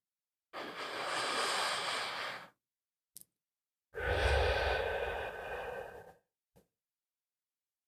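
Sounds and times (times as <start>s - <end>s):
slow deep breath in and out: 0.6s - 2.6s, 4.0s - 6.3s.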